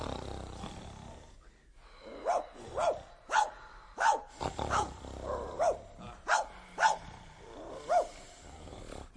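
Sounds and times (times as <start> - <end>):
loose dog barking: 2.2 - 7.0, 7.9 - 8.1.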